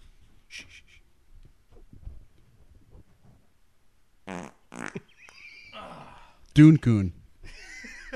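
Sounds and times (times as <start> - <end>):
loud sputtering farts: 4.3 - 5.1
speech: 6.6 - 7.2.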